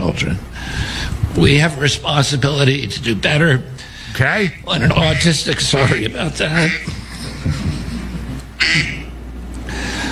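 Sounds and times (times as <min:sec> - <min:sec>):
laughter: 0:00.0 - 0:10.1
low room murmur: 0:00.0 - 0:10.1
speech: 0:00.2 - 0:07.6
phone ringtone of a duck quacking: 0:03.5 - 0:10.1.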